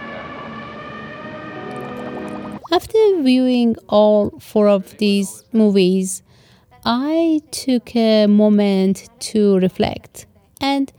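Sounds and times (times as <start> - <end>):
sirens in a film soundtrack: 0.0 - 2.6
speech: 2.7 - 10.9.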